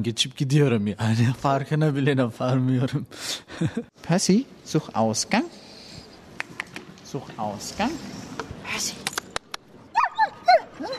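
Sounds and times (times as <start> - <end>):
speech: 0.0 - 5.6, 7.1 - 9.0
guide dog whimpering and yipping: 9.9 - 10.9.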